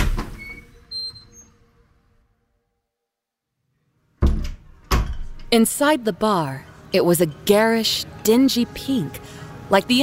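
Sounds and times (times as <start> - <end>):
bar door opening clunk: 0.0 - 0.7, 4.2 - 5.5
speech: 5.5 - 10.0.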